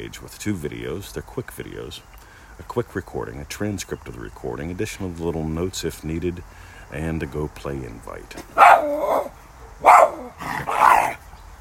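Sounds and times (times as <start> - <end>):
speech: 0.0 - 11.2
dog barking: 8.6 - 11.2.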